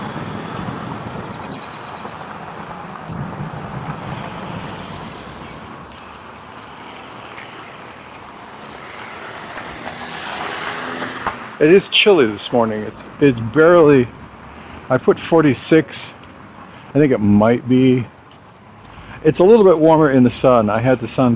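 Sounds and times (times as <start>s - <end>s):
gusty wind: 0.0s - 15.1s
road traffic with cars passing at an intersection: 0.0s - 21.3s
speech: 11.6s - 14.2s, 14.9s - 16.2s, 16.9s - 18.2s, 19.2s - 21.3s.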